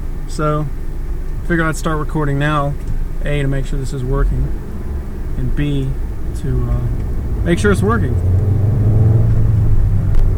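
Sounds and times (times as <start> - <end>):
low engine rumble inside a moving car: 0.0 - 10.3
road drone: 0.0 - 10.3
speech: 0.3 - 0.8, 1.5 - 4.6, 5.4 - 8.4.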